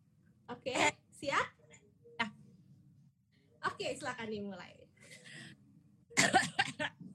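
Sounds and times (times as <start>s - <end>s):
speech: 0.5s - 1.4s, 3.8s - 4.8s, 6.2s - 7.0s
person coughing harshly: 6.2s - 7.0s.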